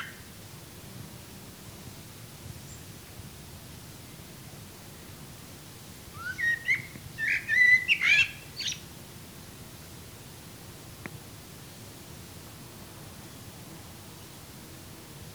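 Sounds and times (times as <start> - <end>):
Common blackbird Turdus merula whistled calls: 6.1 - 8.8.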